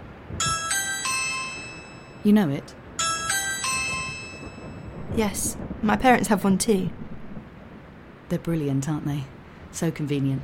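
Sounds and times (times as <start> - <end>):
smart video doorbell chime ringing: 0.4 - 2.4, 3.0 - 5.0
speech: 2.2 - 2.8, 5.1 - 7.0, 8.3 - 10.4.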